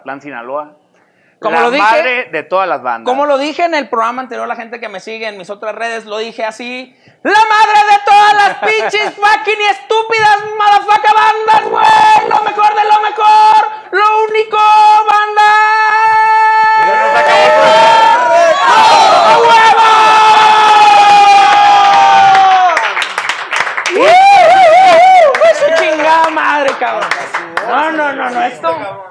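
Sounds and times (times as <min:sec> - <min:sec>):
speech: 0:00.0 - 0:00.8, 0:01.4 - 0:16.1, 0:28.3 - 0:29.1
laughter: 0:08.4 - 0:09.3
crowd shouting and cheering at a live show: 0:10.4 - 0:13.8, 0:15.6 - 0:23.0, 0:23.8 - 0:29.0.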